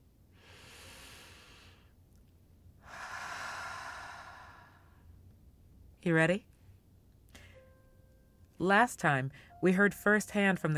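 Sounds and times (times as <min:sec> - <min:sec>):
person taking a slow deep breath: 0:00.3 - 0:01.9, 0:02.8 - 0:05.1
speech: 0:06.0 - 0:06.5, 0:08.6 - 0:10.7.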